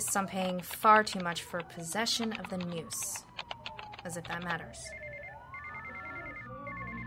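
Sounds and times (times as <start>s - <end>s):
speech: 0.1s - 3.3s, 4.0s - 5.0s
telephone ringing in trilling bursts: 2.1s - 6.9s.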